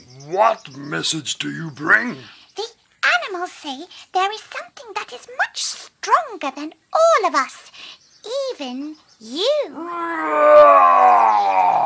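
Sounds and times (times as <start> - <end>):
speech: 0.2 - 11.8
lion roaring: 9.8 - 11.8.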